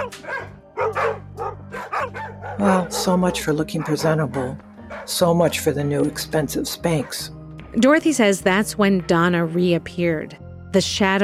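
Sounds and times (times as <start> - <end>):
several dogs barking and yipping excitedly: 0.0 - 6.2, 6.9 - 7.3
speech: 2.6 - 11.2.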